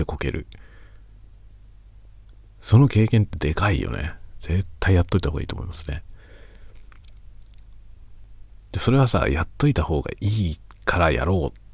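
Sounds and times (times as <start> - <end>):
speech: 0.0 - 0.6, 2.6 - 6.1, 8.7 - 11.6
crunchy chewing of biscuits: 6.5 - 7.9.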